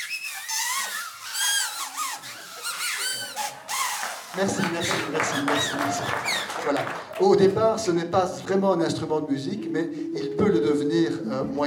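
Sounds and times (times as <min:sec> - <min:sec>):
several homemade paper whistles shrilling: 0:00.0 - 0:06.6
speech: 0:04.4 - 0:11.6.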